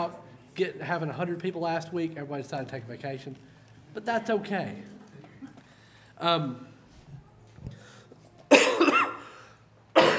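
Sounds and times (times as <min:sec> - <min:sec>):
speech: 0:00.0 - 0:05.0, 0:06.2 - 0:06.7
person coughing at a church service: 0:08.5 - 0:10.1.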